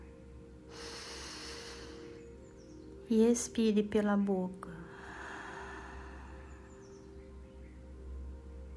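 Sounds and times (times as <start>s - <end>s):
deep inhale through the nose: 0.7s - 2.4s, 4.9s - 6.9s
speech: 3.1s - 4.8s.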